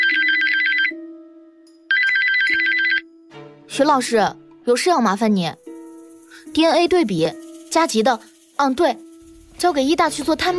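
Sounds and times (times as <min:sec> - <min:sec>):
mobile phone ringtone: 0:00.0 - 0:01.2, 0:01.9 - 0:03.2
speech: 0:03.7 - 0:05.6, 0:06.5 - 0:09.0, 0:09.6 - 0:10.5.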